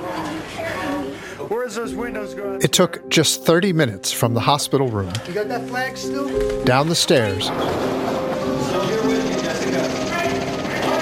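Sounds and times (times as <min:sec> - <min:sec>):
speech: 0:01.5 - 0:09.2
helicopter engine and rotor drone: 0:09.0 - 0:10.9.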